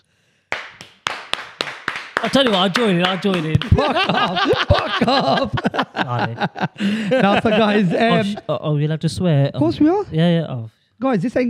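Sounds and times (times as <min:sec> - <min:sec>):
hand claps inside a van: 0:00.5 - 0:04.8
laughter: 0:02.2 - 0:08.6
speech: 0:02.2 - 0:11.4.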